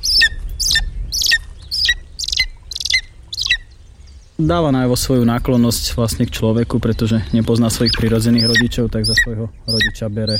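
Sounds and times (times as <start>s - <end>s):
lesser spotted eagle giving shrill yelping calls: 0.0s - 3.9s, 7.3s - 10.3s
faint low rumble: 0.0s - 10.3s
speech: 4.4s - 10.3s.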